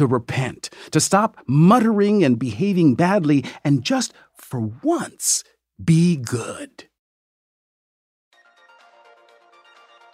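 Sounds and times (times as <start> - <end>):
speech: 0.0 - 6.9
cell phone ringtone electronic melody: 8.3 - 10.1.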